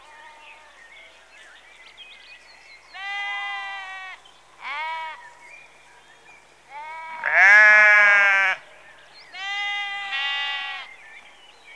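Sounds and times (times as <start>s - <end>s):
sheep bleating in a rural setting in early evening: 3.0s - 5.2s, 6.8s - 8.6s, 9.4s - 10.9s.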